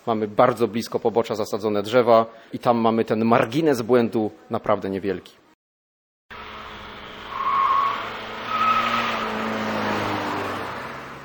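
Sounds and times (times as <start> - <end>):
speech: 0.0 - 5.4
car tyres squealing and skidding under hard braking while steering: 6.3 - 11.2
road roar: 6.3 - 11.2.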